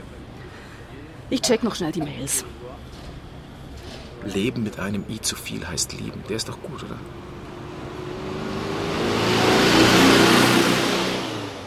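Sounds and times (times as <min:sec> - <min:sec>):
road noise: 0:00.0 - 0:11.6
speech: 0:01.3 - 0:02.8, 0:04.2 - 0:07.3
car engine roar: 0:06.5 - 0:11.6.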